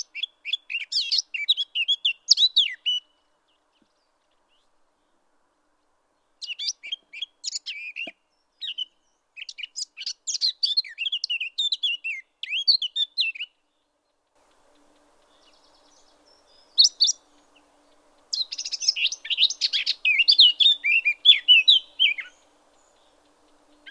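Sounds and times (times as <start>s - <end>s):
Eurasian blackcap song: 0.0s - 3.2s, 6.4s - 13.6s, 14.4s - 23.8s.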